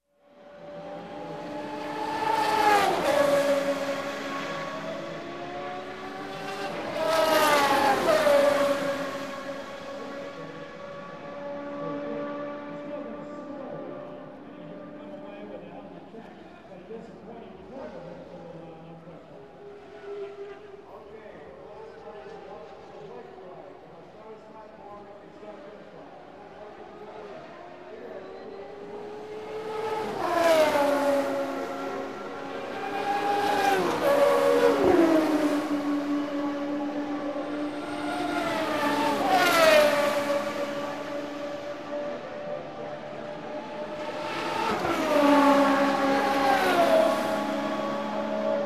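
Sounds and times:
Formula 1 racing car on the finishing straight: 0.4s - 15.6s, 26.4s - 48.6s.

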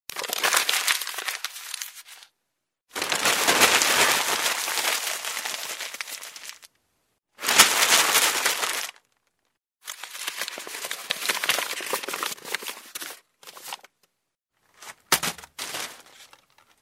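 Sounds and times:
paper crumpling: 0.1s - 2.3s, 2.9s - 6.7s, 7.4s - 9.2s, 9.9s - 13.9s, 14.8s - 16.8s.

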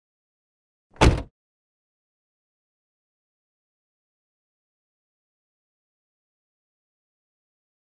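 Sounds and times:
car door slam: 1.0s - 1.3s.

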